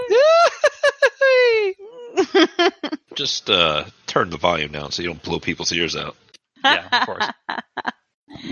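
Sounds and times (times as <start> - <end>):
cartoon character's ah-hoo-hoo-hooey yell: 0.1 - 0.6
laughter: 0.1 - 3.8, 6.7 - 7.9
speech: 3.2 - 7.4.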